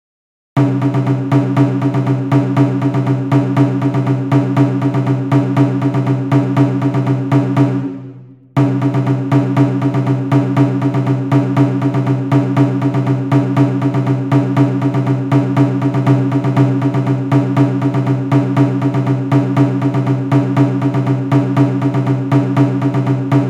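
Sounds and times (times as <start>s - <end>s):
music beat at 120 bpm: 0.6s - 23.4s.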